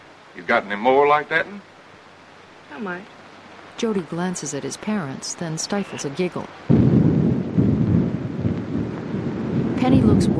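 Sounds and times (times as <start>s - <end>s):
driving rain pouring down during a thunderstorm: 0.0s - 10.3s
speech: 0.4s - 1.7s, 2.7s - 3.2s, 3.8s - 7.0s, 9.8s - 10.3s
thunder rumbling: 6.1s - 10.3s.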